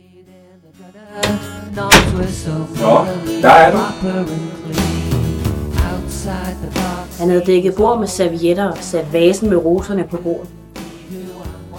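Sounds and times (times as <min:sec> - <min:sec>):
speech: 0:00.8 - 0:04.9, 0:06.2 - 0:10.6
door hinge creaking as door is pushed open: 0:01.2 - 0:02.5.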